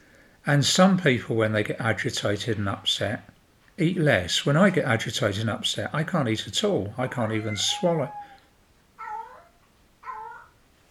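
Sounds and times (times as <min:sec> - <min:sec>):
speech: 0:00.4 - 0:08.2
cat meowing: 0:07.0 - 0:08.4, 0:09.0 - 0:10.5.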